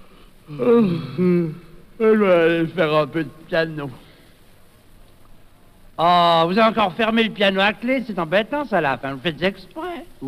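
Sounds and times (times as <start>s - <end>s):
person yawning: 0.4s - 1.8s
speech: 0.5s - 4.0s, 6.0s - 10.2s.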